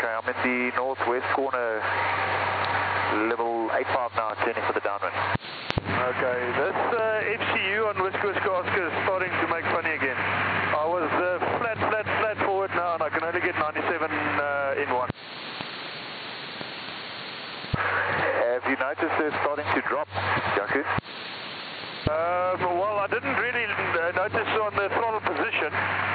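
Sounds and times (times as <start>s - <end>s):
software defined radio receiver audio: 0.0s - 26.1s.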